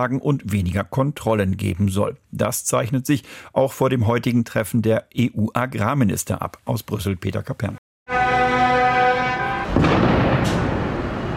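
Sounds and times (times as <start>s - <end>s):
speech: 0.0s - 7.8s
steady horn blaring at a farmers' protest in Brussels: 8.1s - 10.8s
firecracker bang at a farmers' protest in Brussels: 8.9s - 11.3s.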